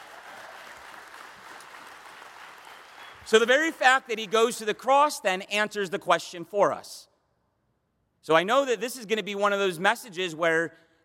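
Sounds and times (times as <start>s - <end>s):
audience applause: 0.0s - 4.5s
speech: 3.3s - 7.1s, 8.2s - 11.0s.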